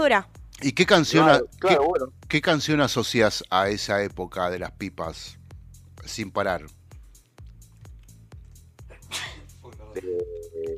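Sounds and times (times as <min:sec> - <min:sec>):
speech: 0:00.0 - 0:05.4, 0:06.0 - 0:06.8, 0:10.0 - 0:10.7
steady rhythmic thumping beat: 0:00.0 - 0:10.7
single sharp sneeze: 0:08.9 - 0:09.6.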